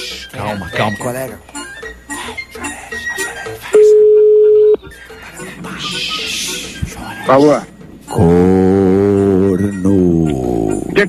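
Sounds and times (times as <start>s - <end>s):
busy noisy background: 0.0s - 11.0s
speech: 0.2s - 1.6s, 4.8s - 8.8s
telephone line tone on a call-in line: 3.8s - 4.8s.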